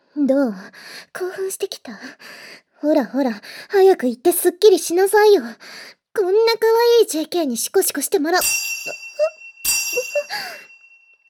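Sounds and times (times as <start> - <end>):
speech: 0.2 - 9.3
bell ringing with a bright metallic shimmering tone: 8.4 - 11.2.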